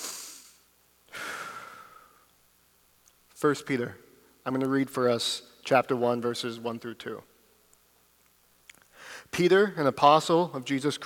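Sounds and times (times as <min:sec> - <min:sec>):
deep breath taken before morning teaching at a church service: 0:00.0 - 0:02.3, 0:08.9 - 0:09.3
speech: 0:03.4 - 0:07.3, 0:09.3 - 0:11.0.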